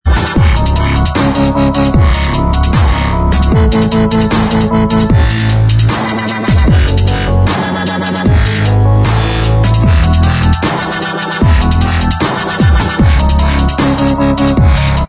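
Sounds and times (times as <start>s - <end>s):
dubstep remix instrumental: 0.0s - 15.0s.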